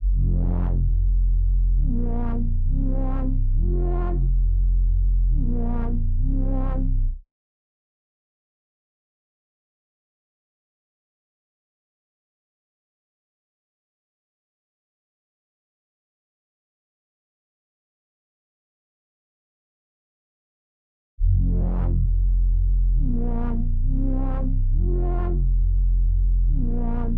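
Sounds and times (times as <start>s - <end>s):
reversed bass melody loop in F minor: 0.0s - 7.2s, 21.2s - 27.1s.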